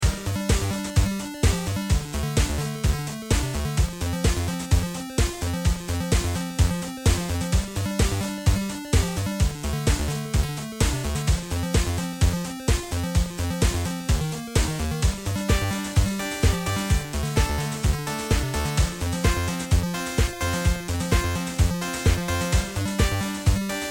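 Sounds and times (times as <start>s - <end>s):
beat at 100 BPM: 0.0s - 23.8s.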